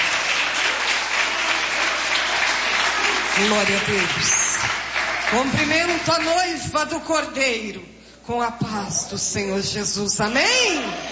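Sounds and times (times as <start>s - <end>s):
crowd applauding: 0.0s - 6.6s
speech: 3.4s - 11.1s.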